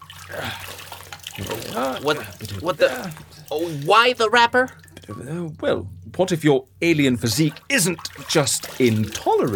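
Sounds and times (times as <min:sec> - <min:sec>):
liquid splashing and pouring onto a hard floor: 0:00.0 - 0:05.2, 0:07.4 - 0:09.5
speech: 0:00.3 - 0:00.7, 0:01.4 - 0:09.5.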